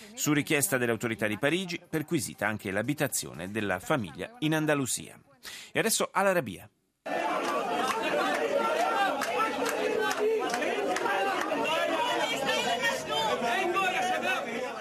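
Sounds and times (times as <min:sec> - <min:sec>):
speech: 0:00.2 - 0:07.2
crowd of protesters chattering and shouting inside a ministry building: 0:07.1 - 0:14.7.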